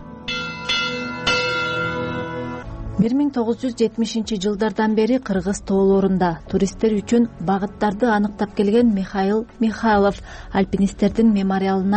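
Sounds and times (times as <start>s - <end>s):
memorial bell rung in honour of climbers who died in the Kyrgyz mountains: 0.3s - 2.6s
speech: 3.0s - 11.9s.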